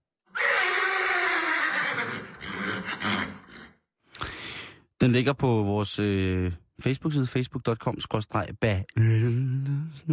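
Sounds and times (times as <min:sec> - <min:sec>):
horse whinnying: 0:00.3 - 0:03.8
horse snorting: 0:01.6 - 0:03.8
speech: 0:05.0 - 0:10.1.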